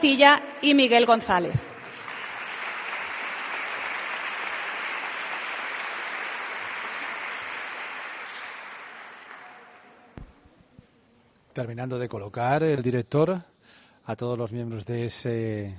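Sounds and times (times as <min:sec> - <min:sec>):
speech: 0:00.0 - 0:01.7, 0:11.6 - 0:15.7
audience applauding a school choir and its directors: 0:01.7 - 0:10.1.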